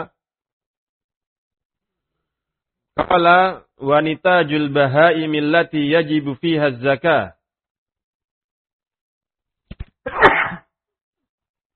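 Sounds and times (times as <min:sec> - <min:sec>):
speech: 0:03.0 - 0:07.4
sneeze: 0:10.1 - 0:10.7.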